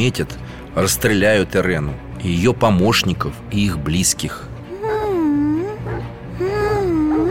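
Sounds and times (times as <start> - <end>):
speech: 0.0 - 4.5
baby crying: 4.7 - 7.2.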